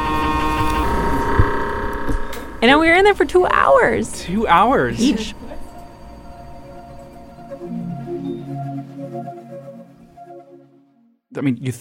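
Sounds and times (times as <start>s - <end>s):
MRI scanner humming during a brain scan: 0.0s - 9.2s
speech: 2.6s - 5.4s, 11.4s - 11.7s.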